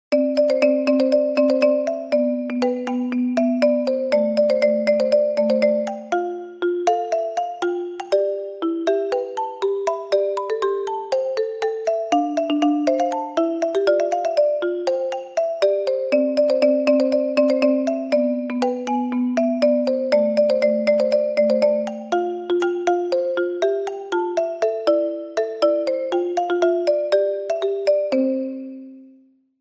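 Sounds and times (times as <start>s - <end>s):
ringtone: 0.1s - 29.4s.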